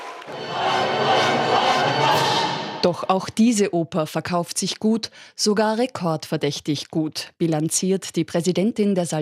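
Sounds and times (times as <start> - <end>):
opera audience booing a new opera production: 0.0 - 2.9
speech: 0.3 - 0.6, 2.8 - 9.2.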